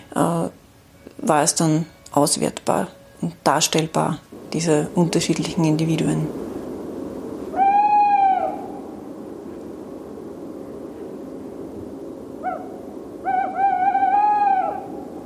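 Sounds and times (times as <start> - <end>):
steady hiss: 0.0 - 15.2
speech: 0.2 - 0.6, 1.2 - 6.4
tawny owl hooting: 7.4 - 9.2, 12.3 - 15.2.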